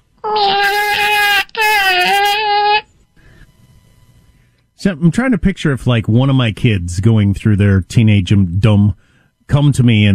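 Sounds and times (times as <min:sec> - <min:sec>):
speech: 0:00.2 - 0:00.7, 0:04.8 - 0:10.1
person imitating a cat's meow: 0:00.2 - 0:02.9.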